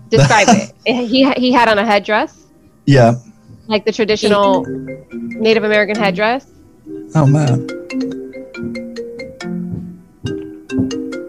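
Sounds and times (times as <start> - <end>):
speech: 0.1 - 8.8
mobile phone ringtone with chime-like tones: 4.2 - 11.2.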